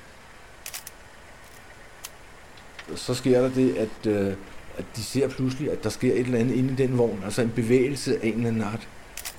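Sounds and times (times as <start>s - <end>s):
steady low hiss: 0.0s - 9.3s
camera shutter clicks: 0.7s - 1.0s, 9.2s - 9.3s
speech: 2.9s - 9.0s.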